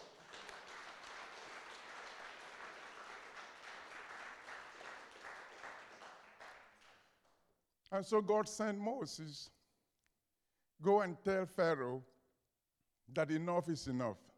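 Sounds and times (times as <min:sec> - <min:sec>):
audience applauding: 0:00.0 - 0:07.3
speech: 0:07.9 - 0:09.6, 0:10.8 - 0:12.1, 0:13.1 - 0:14.3.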